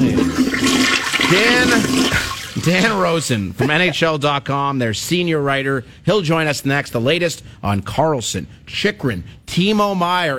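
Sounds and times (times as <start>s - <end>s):
toilet flushing with gurgling and rising whine: 0.0s - 3.3s
speech: 2.6s - 10.3s.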